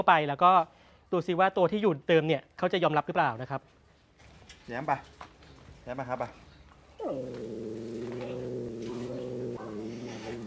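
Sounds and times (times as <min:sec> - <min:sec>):
speech: 0:00.0 - 0:03.8, 0:04.7 - 0:05.2, 0:05.8 - 0:06.4, 0:07.0 - 0:07.6
cat growling yowl during a territorial standoff: 0:07.0 - 0:10.4.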